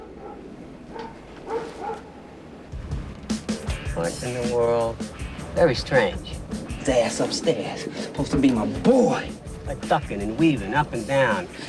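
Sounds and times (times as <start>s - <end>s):
several dogs barking and yipping: 0.0s - 2.4s
speech: 4.0s - 11.6s.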